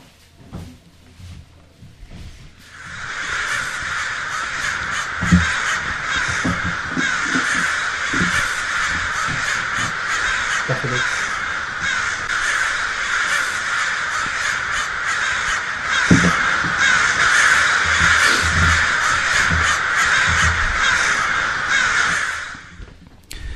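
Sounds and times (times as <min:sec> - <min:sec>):
dense flock of crows cawing: 0:02.6 - 0:23.0
low knocks and thumps: 0:03.4 - 0:12.4, 0:14.2 - 0:21.3.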